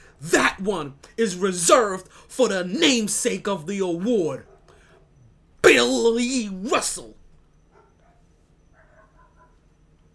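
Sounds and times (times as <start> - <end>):
steady low hum: 0.0 - 10.1
speech: 0.2 - 4.5, 5.7 - 7.2
dogs barking across the street: 4.4 - 5.4, 7.5 - 10.1.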